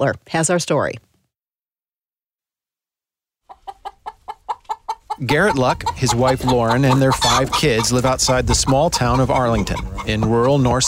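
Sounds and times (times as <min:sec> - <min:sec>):
speech: 0:00.0 - 0:01.1, 0:05.2 - 0:10.8
chickens clucking in a hen house: 0:03.5 - 0:10.8.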